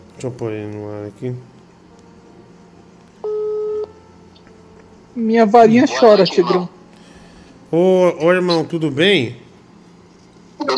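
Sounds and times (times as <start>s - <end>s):
low hum: 0.0s - 10.7s
speech: 0.2s - 1.6s, 5.2s - 6.8s, 7.7s - 9.4s
telephone dialing beep: 3.2s - 3.9s.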